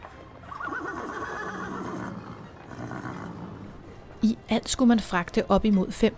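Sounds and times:
horse neighing: 0.5 - 4.1
speech: 4.2 - 6.1.

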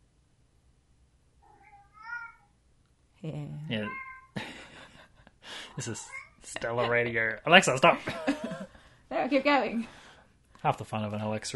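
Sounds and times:
faint low hum: 0.0 - 11.5
cat meowing played by a smart speaker: 1.6 - 2.4, 3.8 - 4.3
speech: 3.2 - 4.1, 5.8 - 10.0, 10.6 - 11.5
laughter: 4.4 - 6.0, 6.8 - 8.7.

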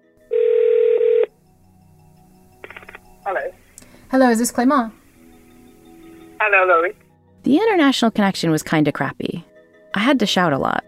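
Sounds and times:
telephone tone: 0.3 - 1.3
speech: 3.3 - 5.0, 6.4 - 10.8.

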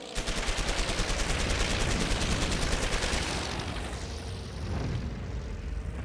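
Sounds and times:
aircraft engine roaring past while strafing: 0.0 - 6.0
aircraft heavy machine-gun fire with tracer and incendiary rounds: 0.2 - 3.8.

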